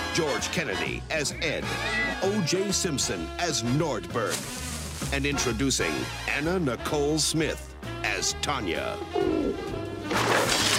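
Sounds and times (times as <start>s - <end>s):
speech: 0.2s - 10.7s
pigeon cooing: 8.9s - 10.1s.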